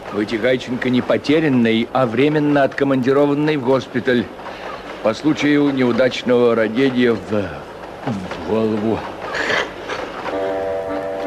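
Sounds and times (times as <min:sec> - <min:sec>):
train rattling past at speed: 0:00.0 - 0:11.2
speech: 0:00.1 - 0:09.6
sustained horn-like tone: 0:10.3 - 0:11.2.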